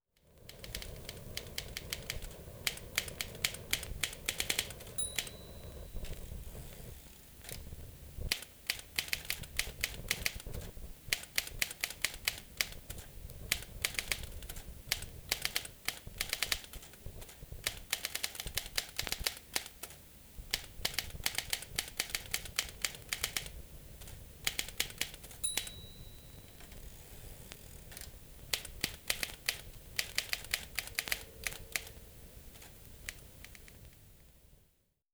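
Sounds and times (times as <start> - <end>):
mechanical typewriter typing: 0.4 - 6.3, 8.3 - 33.7
mechanical typewriter bell: 4.4 - 6.4, 25.3 - 27.0.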